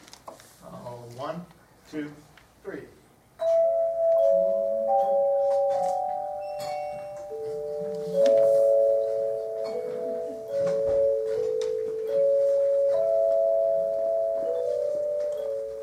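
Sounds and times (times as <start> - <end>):
faint room noise: 0.0 - 15.8
speech: 1.2 - 3.5
set of chimes played by several people ringing a hymn melody: 3.4 - 15.8.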